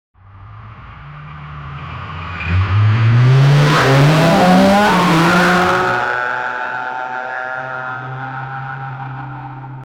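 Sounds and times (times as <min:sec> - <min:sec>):
distorted car starting: 0:02.4 - 0:06.2.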